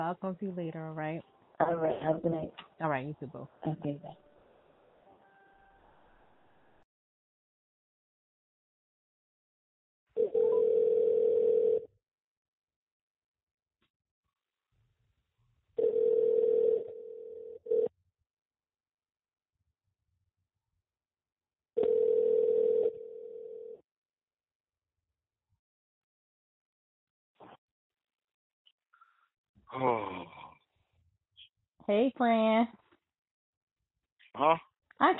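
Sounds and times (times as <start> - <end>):
speech: 0.0 - 4.2, 29.8 - 30.3, 31.9 - 32.8, 34.4 - 35.1
telephone ringback tone while placing a call: 10.2 - 11.9, 15.8 - 17.9, 21.8 - 23.8.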